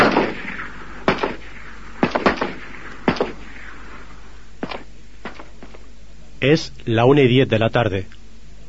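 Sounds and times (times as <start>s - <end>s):
sharp gunshots fired by soldiers inside a school: 0.0s - 5.8s
speech: 6.4s - 8.2s.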